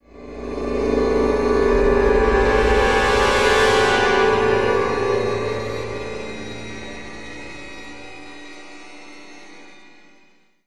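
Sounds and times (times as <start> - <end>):
string horns: 1.6 - 7.8.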